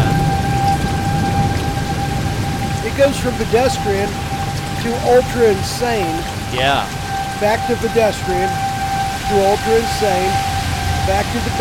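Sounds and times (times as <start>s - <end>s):
faint steady tone: 0.0s - 11.5s
heavy rain pouring during a thunderstorm: 0.0s - 11.5s
speech: 3.0s - 8.6s, 9.3s - 10.5s, 11.1s - 11.5s.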